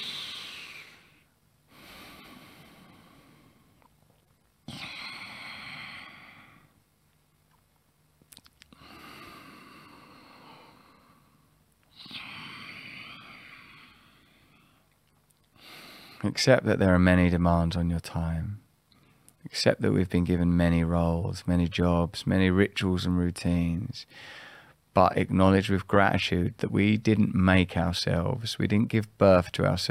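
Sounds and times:
slow deep breathing in and out with nasal rasp: 0.0s - 3.9s, 4.7s - 6.8s, 8.7s - 16.3s, 24.1s - 24.8s
speech: 16.2s - 18.6s, 19.5s - 29.8s.

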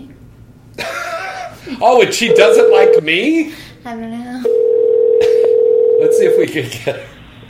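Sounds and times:
speech: 1.7s - 4.6s, 6.0s - 7.2s
voices on a phone line: 2.2s - 3.4s, 4.4s - 6.6s
telephone line tone from a radio show phone: 2.3s - 3.0s, 4.5s - 6.5s.

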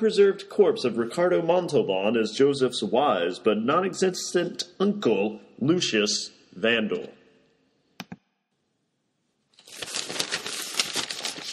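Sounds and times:
speech: 0.0s - 7.2s
papers rustling: 9.6s - 11.5s.

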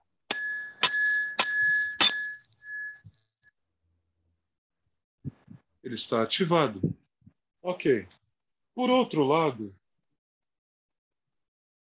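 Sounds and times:
small ritual bell struck to perform the ritual: 0.3s - 3.6s
speech: 5.9s - 6.9s, 7.6s - 8.2s, 8.8s - 9.8s.

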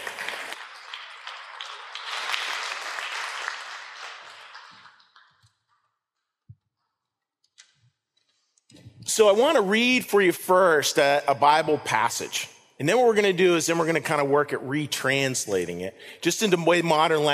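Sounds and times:
audience clapping to welcome volunteers: 0.0s - 5.9s
speech: 9.1s - 17.3s.

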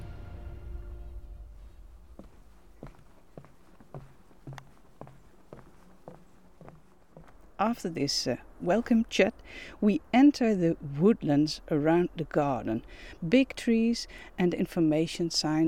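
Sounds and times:
low steady hiss: 0.0s - 15.6s
footsteps walking along a path into woodland on an estate: 1.8s - 9.1s
speech: 7.6s - 15.6s.

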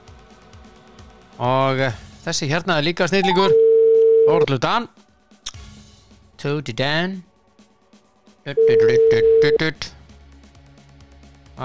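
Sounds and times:
speech: 1.4s - 3.6s, 4.2s - 5.0s, 6.4s - 7.3s, 8.4s - 9.9s
electronic telephone ring tone: 3.2s - 4.5s, 8.6s - 9.6s.

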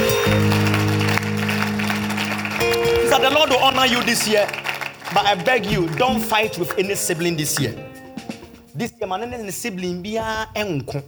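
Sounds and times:
audience clapping: 0.0s - 8.6s
sustained keyboard or organ chords: 0.0s - 8.8s
speech: 3.2s - 8.0s, 8.8s - 11.0s.

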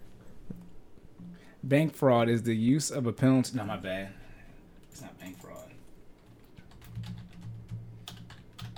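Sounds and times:
speech: 1.6s - 4.2s
computer keyboard typing: 4.8s - 8.7s.

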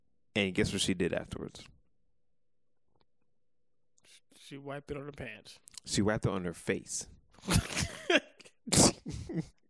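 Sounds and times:
speech: 0.4s - 1.8s, 4.5s - 9.6s
person imitating a sneeze into hands: 8.7s - 9.1s.

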